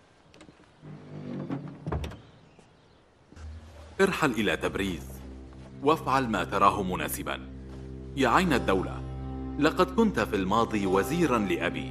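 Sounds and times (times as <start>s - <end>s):
door creaking and shutting with solid thuds: 0.4s - 2.7s
speech: 4.0s - 5.2s, 5.8s - 7.5s, 8.2s - 9.0s, 9.6s - 11.8s.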